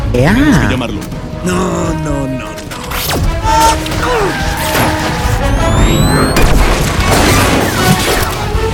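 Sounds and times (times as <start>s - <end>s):
speech: 0.2s - 4.4s
gunshots in a rapid chaotic volley: 4.6s - 8.7s.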